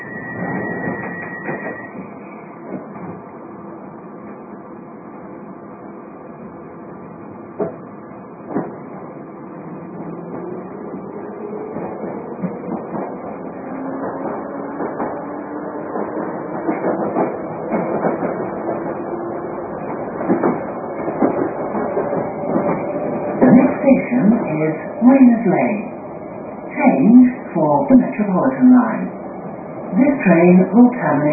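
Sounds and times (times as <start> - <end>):
London Underground train rumble along the track: 0.0 - 31.3
London Underground train wheels clacking on rails: 7.6 - 9.0, 10.1 - 25.3.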